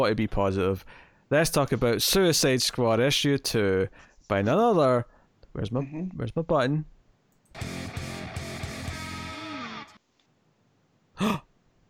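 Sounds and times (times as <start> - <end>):
speech: 0.0 - 7.0, 7.6 - 8.0, 11.2 - 11.4
person coughing: 11.2 - 11.5.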